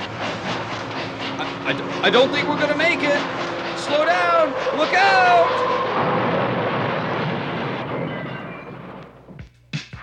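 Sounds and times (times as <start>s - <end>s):
broadband clatter and hiss of a train: 0.0s - 8.0s
train rolling along the rails: 0.0s - 9.5s
speech: 1.7s - 6.2s.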